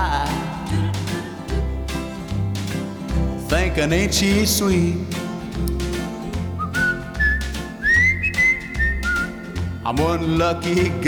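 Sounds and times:
musical backing with a thumping low end: 0.0 - 11.0
speech: 3.6 - 5.2, 9.9 - 11.0
person whistling a bright sliding melody: 6.6 - 9.8.

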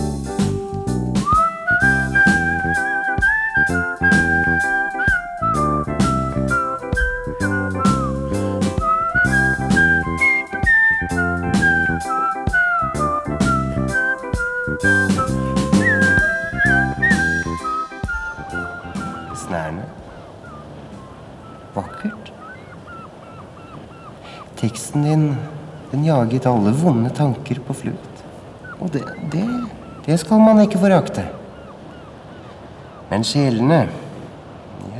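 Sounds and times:
instrumental accompaniment: 0.0 - 20.2
person whistling a flowing melody with sliding notes: 1.2 - 19.7
speech: 26.1 - 28.1, 28.9 - 31.4, 33.1 - 34.0.

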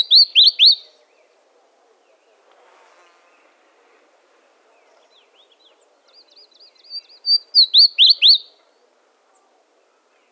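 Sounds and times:
Chestnut-crowned bush warbler Cettia major singing: 0.0 - 1.4, 4.7 - 8.6.

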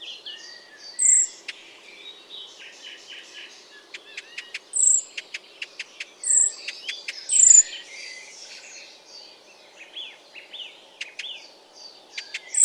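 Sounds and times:
Icterine warbler song: 0.0 - 12.6
Icterine warbler soft scratchy twittering: 0.9 - 1.6, 3.9 - 8.7, 12.1 - 12.6.

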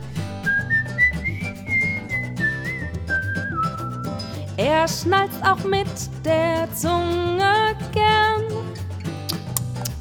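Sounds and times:
bouncy backing music with a steady beat: 0.0 - 9.9
mouth-whistled melody: 0.3 - 4.5
speech: 4.6 - 8.7.

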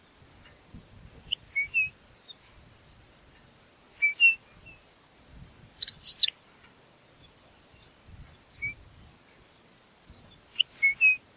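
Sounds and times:
Lapland longspur Calcarius lapponicus calls: 1.2 - 2.5, 3.9 - 4.9, 5.8 - 6.4, 7.0 - 8.8, 9.4 - 11.2.

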